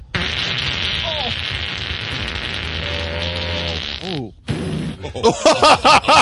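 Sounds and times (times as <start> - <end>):
long low buzzy fart: 0.0 - 5.1
steady hiss of noise: 0.0 - 6.1
laughter: 5.0 - 6.1.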